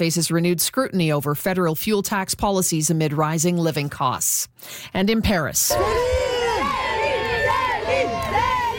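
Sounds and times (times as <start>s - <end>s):
speech: 0.0s - 6.3s
dense crowd cheering and shouting: 5.7s - 8.7s
high excited whoops: 5.7s - 8.7s.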